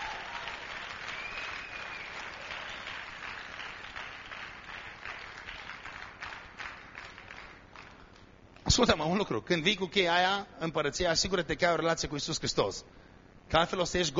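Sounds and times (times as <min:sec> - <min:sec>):
audience applause after a demonstration during a sermon: 0:00.0 - 0:08.0
speech: 0:08.8 - 0:14.1.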